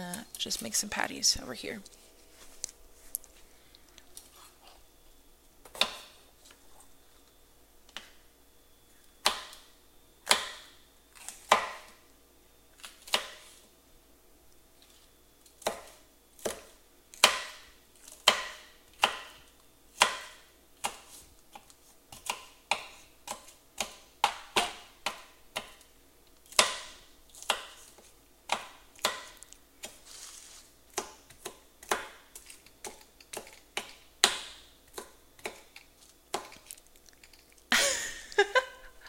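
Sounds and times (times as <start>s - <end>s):
speech: 0.4s - 2.0s
knife dicing food: 5.6s - 6.2s, 9.2s - 9.6s, 10.2s - 12.0s, 12.9s - 13.6s, 15.6s - 25.9s, 26.5s - 30.1s, 30.9s - 36.7s
laughter: 37.7s - 39.0s.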